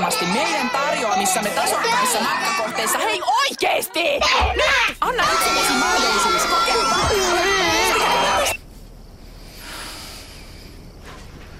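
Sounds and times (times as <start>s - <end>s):
children screaming and crying in a television advert for holiday travel: 0.0s - 3.4s, 4.2s - 8.6s
speech: 0.4s - 7.7s.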